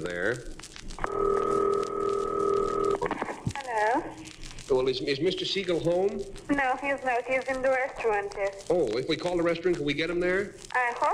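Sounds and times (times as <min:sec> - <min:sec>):
speech: 0:00.0 - 0:00.7, 0:04.8 - 0:11.1
faint rustling: 0:00.0 - 0:11.1
steady telephone line tone of a long-distance call: 0:01.0 - 0:03.0.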